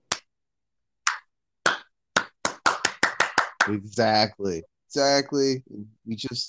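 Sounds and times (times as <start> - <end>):
slow clap by a single pair of hands: 1.0 - 3.8
speech: 3.7 - 6.4.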